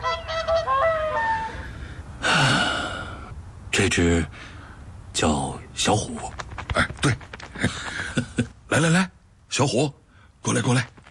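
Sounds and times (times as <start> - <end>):
rescued swans honking and trumpeting: 0.0 - 1.7
speech: 3.8 - 4.6, 5.2 - 11.0.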